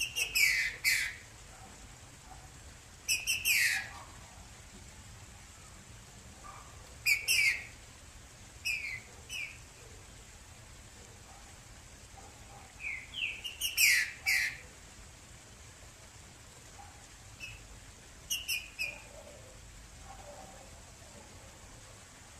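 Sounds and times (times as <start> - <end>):
female green-winged saltator singing short descending whistled notes: 0.0 - 1.2, 3.1 - 3.9, 7.1 - 7.7, 8.6 - 9.6, 12.8 - 14.6, 17.4 - 17.7, 18.3 - 19.1
faint steady hiss: 0.0 - 22.3.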